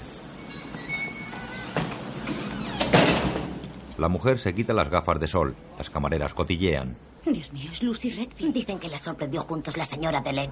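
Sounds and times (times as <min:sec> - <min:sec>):
low noise: 0:00.0 - 0:10.5
restaurant door swinging open: 0:00.5 - 0:03.8
speech: 0:04.0 - 0:10.5.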